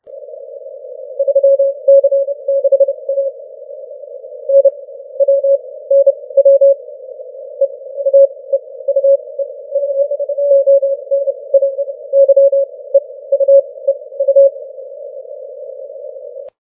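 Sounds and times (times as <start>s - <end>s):
morse code CW signal on 30 m amateur band: 1.2s - 3.3s, 4.5s - 6.8s, 7.6s - 14.6s.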